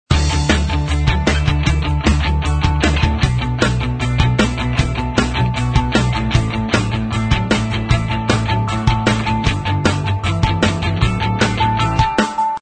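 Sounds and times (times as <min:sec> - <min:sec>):
music loop: 0:00.1 - 0:12.5.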